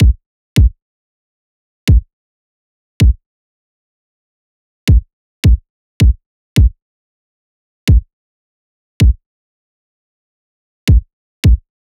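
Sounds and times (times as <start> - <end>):
pop kick drum loop: 0.0 - 0.7, 4.9 - 6.8, 10.9 - 11.6.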